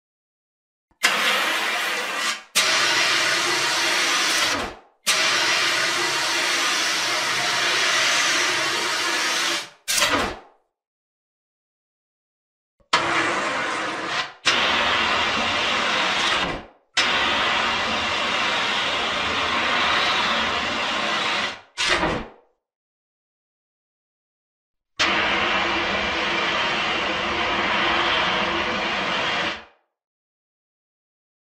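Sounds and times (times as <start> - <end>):
fire extinguisher spraying: 1.0 - 10.2, 12.9 - 22.1, 25.0 - 29.6.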